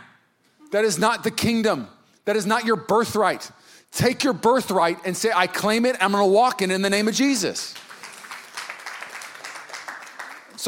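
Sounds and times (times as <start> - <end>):
speech: 0.7 - 7.8
audience clapping: 7.6 - 10.6.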